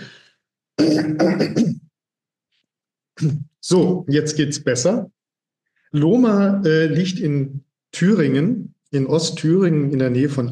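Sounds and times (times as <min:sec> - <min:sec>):
throat clearing: 0:00.8 - 0:01.9, 0:03.2 - 0:03.5
speech: 0:03.2 - 0:05.2, 0:05.9 - 0:10.5.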